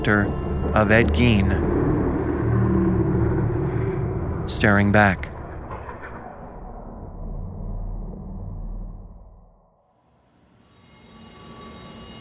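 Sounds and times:
speech: 0.0s - 1.7s, 4.5s - 5.4s
steady low rumble: 0.0s - 9.9s
telephone ringing with electronic tone: 10.6s - 12.1s.

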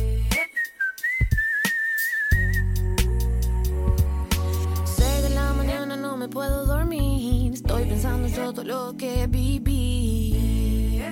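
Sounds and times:
musical backing with bass and percussion: 0.0s - 0.4s, 2.3s - 5.9s, 6.5s - 8.4s, 9.2s - 11.0s
whistled bird-like melody: 0.3s - 3.0s
speech: 8.4s - 10.4s.

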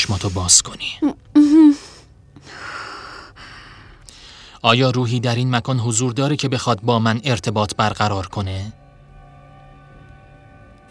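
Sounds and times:
speech: 0.1s - 1.2s, 4.6s - 8.8s
breathing in and out during a guided breathing exercise: 1.8s - 4.6s.

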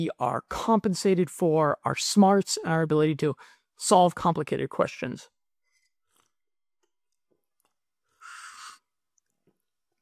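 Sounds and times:
speech: 0.0s - 5.4s
slurp of hot tea: 8.2s - 9.0s.

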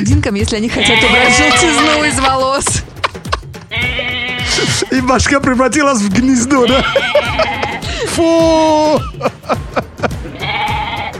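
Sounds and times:
speech: 0.0s - 2.9s, 3.8s - 10.1s
goat bleating: 0.7s - 5.3s, 6.3s - 7.9s, 10.2s - 11.1s
laughter: 0.7s - 5.4s, 6.0s - 10.7s.

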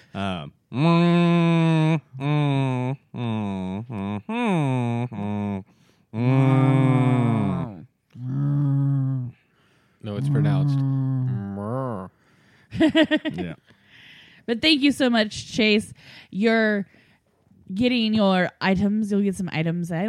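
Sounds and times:
speech: 0.2s - 1.2s, 12.9s - 13.6s, 14.5s - 16.9s, 17.7s - 20.0s
man imitating cow mooing: 0.2s - 9.4s, 10.2s - 12.0s.

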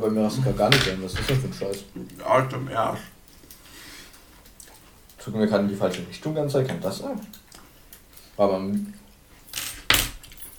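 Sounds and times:
speech: 0.0s - 3.2s, 5.2s - 7.4s, 8.4s - 9.0s
hanging keys jangling: 9.5s - 10.5s.

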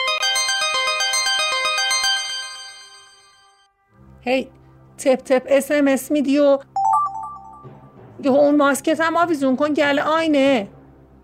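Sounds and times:
electronic mobile phone ringtone melody of tonal beeps: 0.0s - 3.6s, 6.8s - 7.8s
speech: 4.2s - 6.7s, 7.6s - 10.8s.

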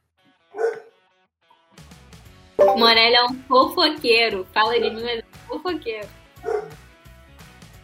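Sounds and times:
dog barking: 0.5s - 1.0s, 6.4s - 6.8s
speech: 2.8s - 6.2s.

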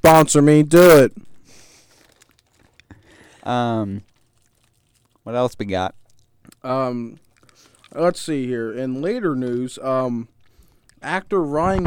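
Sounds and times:
speech: 0.0s - 1.3s, 3.4s - 4.1s, 5.3s - 6.0s, 6.6s - 7.2s, 7.9s - 10.3s, 11.0s - 11.8s
corn chips crunching: 1.5s - 8.6s
snack bag crinkling: 1.5s - 9.1s.

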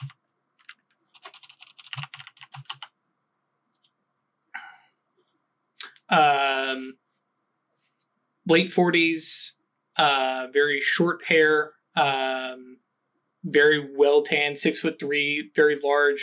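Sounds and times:
typing on a computer keyboard: 0.0s - 3.0s
speech: 8.5s - 12.8s, 13.4s - 16.2s.

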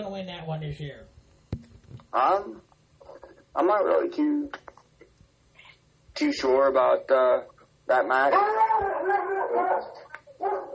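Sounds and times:
speech: 0.0s - 1.2s, 2.1s - 2.7s, 3.6s - 4.7s, 6.2s - 10.7s
big dog barking outside: 8.3s - 10.7s.

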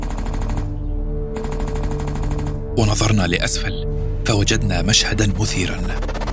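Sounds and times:
rapid gunfire from a firearm: 0.0s - 2.6s
speech: 2.8s - 6.2s.

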